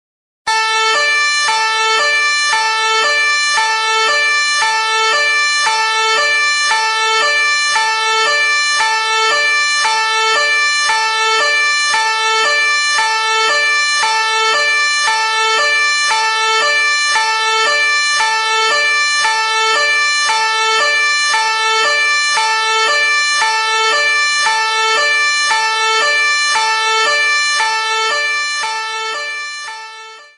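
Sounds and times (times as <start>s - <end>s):
police siren: 0.5s - 30.3s.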